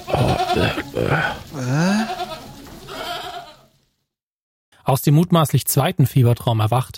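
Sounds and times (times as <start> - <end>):
goat bleating: 0.0 - 3.7
speech: 0.2 - 1.9, 4.9 - 6.9.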